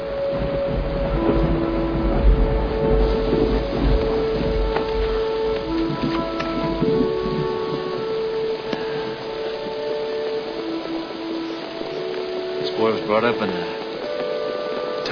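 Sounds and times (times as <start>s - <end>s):
deep rumble of thunder: 0.0s - 11.2s
dense rain hissing: 0.0s - 15.1s
faint sustained tones: 0.0s - 15.1s
speech: 13.2s - 13.6s.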